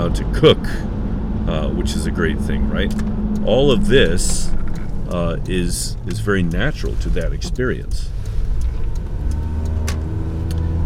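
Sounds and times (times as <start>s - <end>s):
car driving fast on bypass roads, engine and road rumble: 0.0s - 10.8s
speech: 0.1s - 0.9s, 1.5s - 8.2s.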